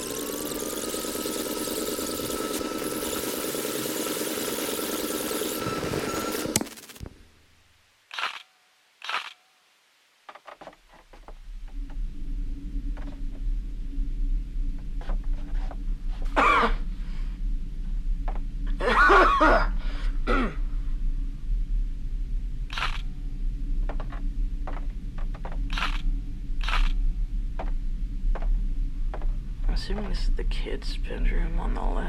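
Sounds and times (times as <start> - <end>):
steady low room hum: 0.0 - 32.0
camera shutter clicks: 8.1 - 9.4, 25.7 - 26.0
woman coughing: 16.4 - 16.8, 18.8 - 20.6
speech: 29.9 - 32.0.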